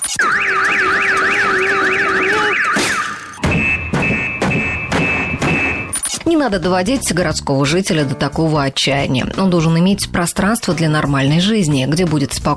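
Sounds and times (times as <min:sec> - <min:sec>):
car alarm blaring: 0:00.0 - 0:06.2
speech: 0:06.4 - 0:12.5.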